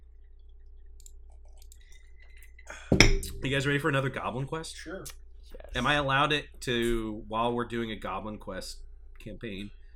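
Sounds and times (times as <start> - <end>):
glasses clinking in a toast: 2.9 - 3.5
speech: 2.9 - 9.8.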